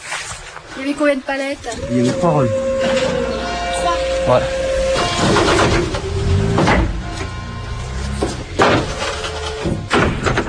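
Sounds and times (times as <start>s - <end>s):
speech: 0.8s - 3.3s, 4.2s - 4.6s
steady low rumble: 1.6s - 9.2s
doors shutting: 1.7s - 10.4s.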